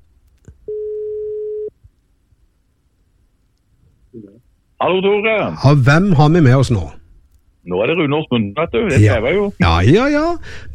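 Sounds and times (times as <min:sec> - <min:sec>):
outgoing telephone call ringing tone heard through the line: 0:00.7 - 0:01.7
speech: 0:04.8 - 0:07.0, 0:07.6 - 0:10.7.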